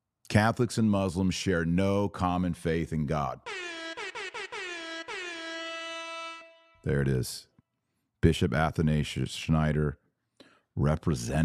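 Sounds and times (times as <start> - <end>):
speech: 0.3 - 3.7, 6.8 - 7.5, 8.2 - 10.0, 10.8 - 11.4
party air horn blasts: 3.5 - 7.1.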